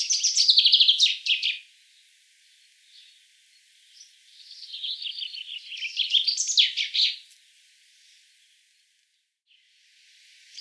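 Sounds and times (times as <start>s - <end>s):
Common chaffinch Fringilla coelebs singing: 0.0s - 1.6s, 4.0s - 7.2s.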